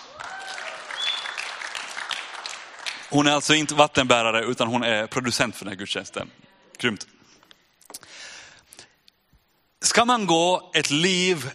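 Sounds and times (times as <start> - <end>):
audience applause: 0.0 - 3.8
faint whistles: 0.9 - 1.4
speech: 3.1 - 7.2, 10.0 - 11.5.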